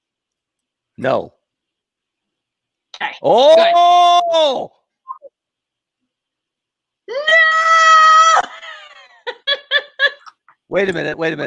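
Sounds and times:
speech: 1.0s - 1.4s, 3.2s - 4.8s, 10.7s - 11.4s
girl screaming: 7.1s - 9.0s.

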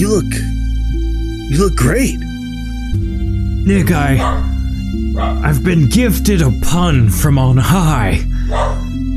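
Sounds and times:
speech: 0.0s - 0.6s, 1.5s - 2.3s, 2.9s - 4.5s, 5.2s - 8.8s
dog barking: 4.2s - 5.4s, 8.5s - 9.0s.

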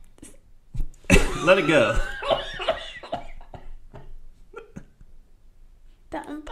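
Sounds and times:
person coughing: 1.1s - 2.2s, 3.0s - 5.0s
speech: 1.4s - 2.4s.

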